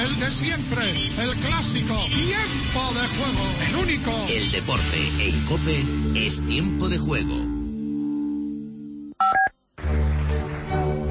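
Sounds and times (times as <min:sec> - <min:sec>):
music: 0:00.0 - 0:11.0
speech: 0:00.3 - 0:07.6
telephone keypad dual-pitched beeps: 0:09.2 - 0:09.5.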